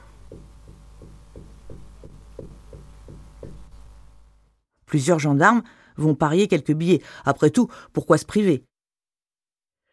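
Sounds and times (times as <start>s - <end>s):
dull knocks from inside a wall: 0.2s - 3.9s
speech: 4.9s - 8.7s.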